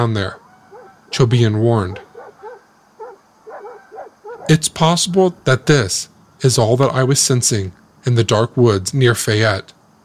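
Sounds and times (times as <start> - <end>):
speech: 0.0 - 0.4, 1.1 - 2.1, 4.5 - 9.8
guard dogs barking: 0.4 - 4.6.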